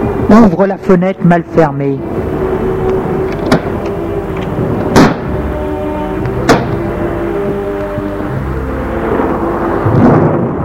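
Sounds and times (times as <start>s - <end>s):
gusting wind: 0.0s - 10.6s
speech: 0.3s - 2.5s
storm rumble: 2.0s - 10.6s
sharp thunder cracks: 4.9s - 5.4s, 6.5s - 6.8s, 9.8s - 10.6s.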